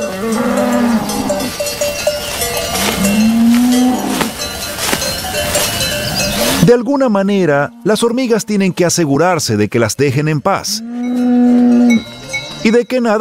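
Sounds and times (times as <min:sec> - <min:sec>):
cows mooing on mountain pasture: 0:00.0 - 0:06.8, 0:07.4 - 0:09.0, 0:10.6 - 0:12.7
cowbells clanking on mountain pasture: 0:00.0 - 0:09.1, 0:10.2 - 0:13.2
speech: 0:06.7 - 0:11.2, 0:11.9 - 0:13.2.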